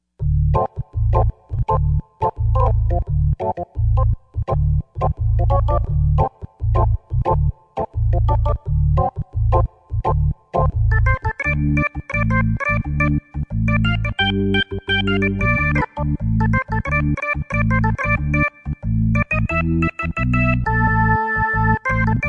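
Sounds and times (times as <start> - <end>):
warm organ factory preset on a Yamaha TG55: 0.2 - 22.2.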